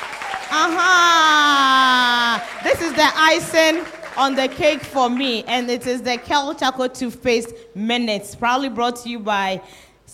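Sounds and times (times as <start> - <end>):
students clapping at a school promotional event: 0.0 - 6.6
speech: 0.5 - 10.1.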